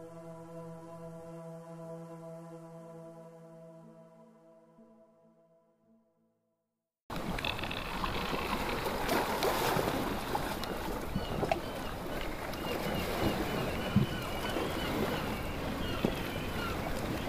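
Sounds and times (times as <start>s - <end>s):
sea water sloshing and splashing against a sailing boat hull: 7.1s - 17.2s.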